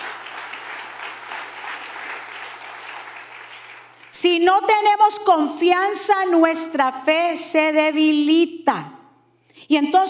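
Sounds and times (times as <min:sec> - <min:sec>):
audience applauding loudly: 0:00.0 - 0:04.2
speech: 0:04.2 - 0:09.0, 0:09.7 - 0:10.0.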